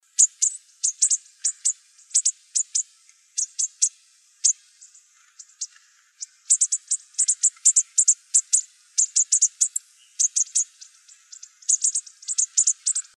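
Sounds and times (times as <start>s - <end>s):
bushtit calling: 0.2s - 2.8s, 5.4s - 13.1s.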